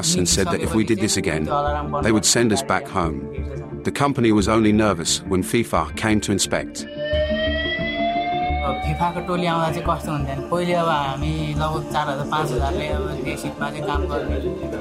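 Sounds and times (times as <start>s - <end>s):
speech: 0.0s - 7.3s, 8.7s - 14.7s
fire alarm ringing: 6.8s - 9.3s.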